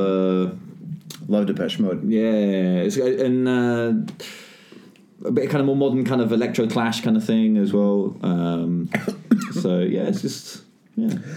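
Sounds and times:
speech: 1.3 - 4.4, 5.2 - 11.3
man coughing and choking: 8.9 - 9.7.

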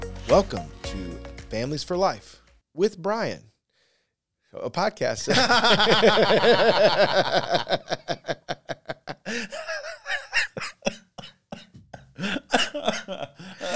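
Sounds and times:
speech: 0.3 - 3.5, 4.5 - 8.3
person laughing hard: 5.3 - 13.7
person coughing roughly: 9.3 - 13.7.

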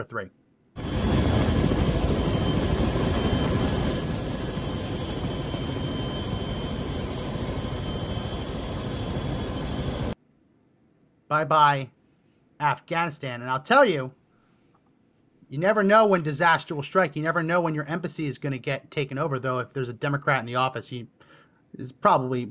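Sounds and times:
speech: 0.0 - 0.4, 11.3 - 12.0, 12.6 - 14.2, 15.5 - 22.4
helicopter leaving an embassy: 0.8 - 10.2.

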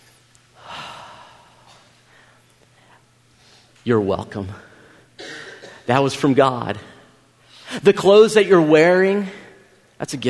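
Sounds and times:
people taking a deep breath: 0.6 - 3.7
speech: 3.8 - 4.7, 5.9 - 6.9, 7.8 - 9.4, 10.0 - 10.2.

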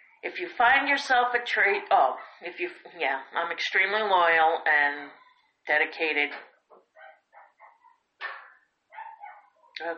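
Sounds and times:
speech: 0.2 - 6.5, 9.8 - 9.9
dogs barking inside a house: 6.8 - 9.8.

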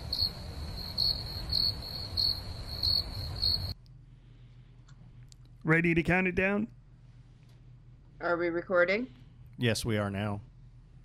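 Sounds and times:
crickets chirping: 0.0 - 3.8
speech: 5.7 - 6.8, 8.2 - 10.5.

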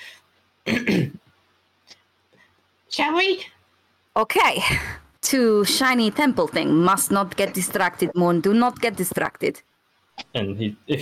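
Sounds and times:
man clearing his throat with a rough double cough: 0.7 - 1.2
speech: 0.9 - 1.2, 3.0 - 3.6, 4.2 - 11.0.

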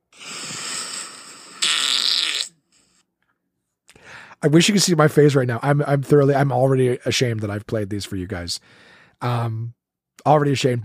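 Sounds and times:
long sputtering fart sound effect: 0.2 - 2.6
speech: 4.4 - 10.8.

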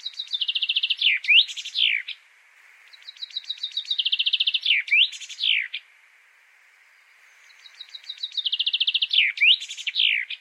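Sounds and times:
finch singing: 0.0 - 2.2, 2.9 - 5.8, 7.2 - 10.3.

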